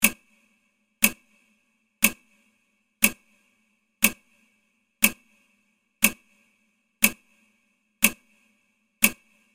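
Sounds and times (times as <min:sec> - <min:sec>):
clock hands moving: 0:00.0 - 0:00.2, 0:01.0 - 0:01.2, 0:02.0 - 0:02.2, 0:03.0 - 0:03.2, 0:04.0 - 0:04.3, 0:05.0 - 0:05.2, 0:06.0 - 0:06.2, 0:07.0 - 0:07.2, 0:08.0 - 0:08.2, 0:09.0 - 0:09.3.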